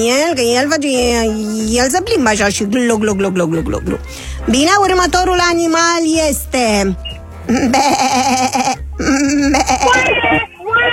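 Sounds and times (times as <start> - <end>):
speech: 0.0 - 10.9
human voice imitating a sheep's bleat in an animal-sound guessing game: 7.5 - 10.4.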